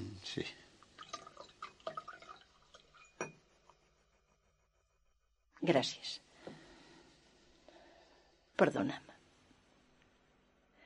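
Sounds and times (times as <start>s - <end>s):
speech: 0.3s - 0.6s, 5.7s - 6.2s, 8.6s - 9.1s
whisky splashing and trickling into a glass: 0.9s - 3.4s
glassy clinks: 1.9s - 3.4s.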